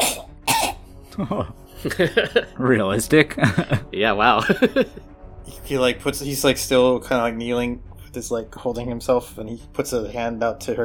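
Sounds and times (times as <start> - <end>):
person imitating a harsh wet cough: 0.0 - 1.4
laughter: 1.1 - 2.6, 3.3 - 5.0
speech: 1.2 - 10.8.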